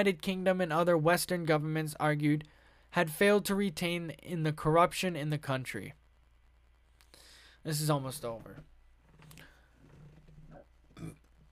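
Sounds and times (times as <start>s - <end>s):
speech: 0.0s - 6.0s, 7.6s - 8.7s
person burping: 10.9s - 11.3s.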